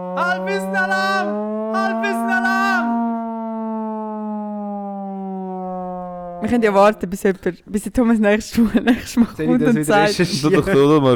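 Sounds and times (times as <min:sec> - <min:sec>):
speech: 0:00.0 - 0:02.3, 0:06.4 - 0:11.1
siren wailing: 0:00.0 - 0:07.1.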